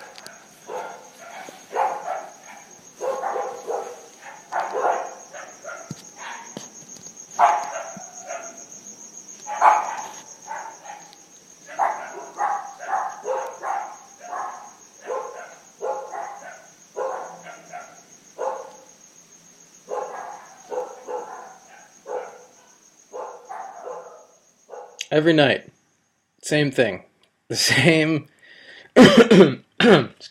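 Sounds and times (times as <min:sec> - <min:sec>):
neighborhood dogs barking at night in Bolivia: 0:00.0 - 0:06.7, 0:07.3 - 0:08.8, 0:09.4 - 0:19.0, 0:19.8 - 0:25.0
crickets droning: 0:00.0 - 0:30.2
speech: 0:25.2 - 0:25.7, 0:26.4 - 0:28.3, 0:29.0 - 0:30.2.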